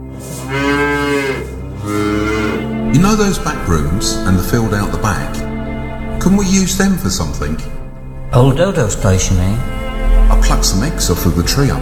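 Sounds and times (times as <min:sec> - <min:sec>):
cows mooing: 0:00.0 - 0:03.0, 0:09.7 - 0:10.7
speech: 0:03.0 - 0:05.4, 0:06.2 - 0:07.8, 0:08.4 - 0:09.8, 0:10.4 - 0:11.8.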